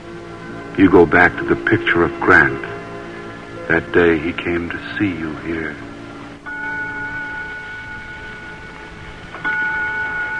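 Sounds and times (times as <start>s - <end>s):
speech: 0.8s - 2.8s, 3.7s - 5.9s
small china clock chiming: 6.5s - 10.3s.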